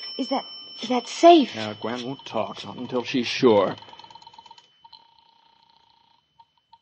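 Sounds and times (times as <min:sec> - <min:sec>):
speech: 0:00.2 - 0:03.9
telephone being dialed to call a landlady: 0:03.5 - 0:04.7.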